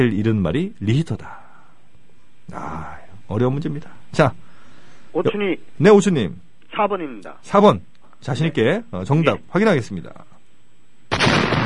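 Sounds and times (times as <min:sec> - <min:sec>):
speech: 0:00.0 - 0:01.4, 0:02.5 - 0:04.5, 0:05.2 - 0:10.3
loud bomb explosion sound effect: 0:11.1 - 0:11.6.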